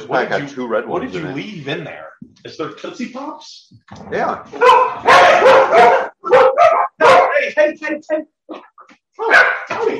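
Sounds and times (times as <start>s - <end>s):
speech: 0.1s - 6.7s, 7.4s - 8.6s, 9.2s - 9.9s
dog barking: 4.6s - 7.4s, 9.2s - 9.9s.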